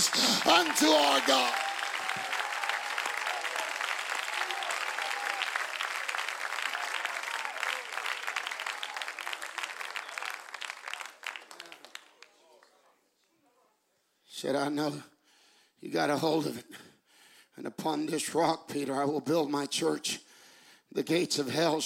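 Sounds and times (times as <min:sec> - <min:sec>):
audience at a church service clapping hands: 0:00.0 - 0:13.0
speech: 0:00.6 - 0:02.3, 0:14.4 - 0:15.1, 0:15.8 - 0:16.8, 0:17.6 - 0:20.2, 0:20.9 - 0:21.8.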